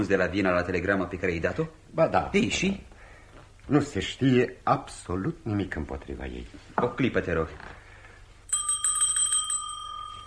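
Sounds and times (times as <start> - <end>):
speech: 0.0 - 2.9, 3.7 - 7.8
small hand bell rung to summon a servant: 8.5 - 10.2.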